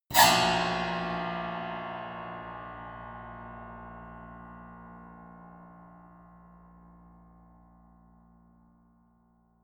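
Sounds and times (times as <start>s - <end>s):
piano squeal: 0.1s - 1.6s.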